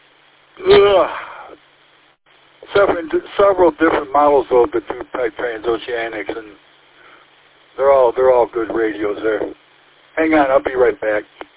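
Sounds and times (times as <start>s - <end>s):
person yawning: 0.6s - 1.6s
speech: 0.8s - 1.2s, 2.8s - 6.7s, 7.8s - 9.6s, 10.2s - 11.5s.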